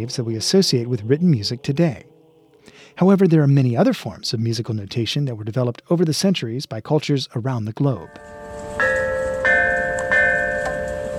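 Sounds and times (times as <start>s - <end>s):
speech: 0.0s - 2.1s, 2.9s - 8.5s
ancient Chinese bronze bells ringing: 8.1s - 11.1s.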